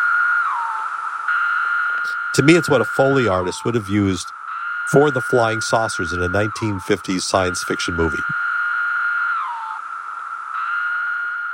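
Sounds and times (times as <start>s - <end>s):
periodical cicada Magicicada septendecim droning call: 0.0s - 11.5s
speech: 2.0s - 8.4s.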